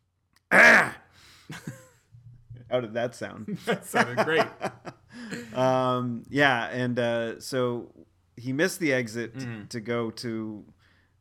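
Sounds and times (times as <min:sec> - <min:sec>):
person clearing throat with a harsh rasp: 0:00.5 - 0:01.0
speech: 0:02.7 - 0:05.0, 0:05.6 - 0:10.8
laughter: 0:03.5 - 0:05.8.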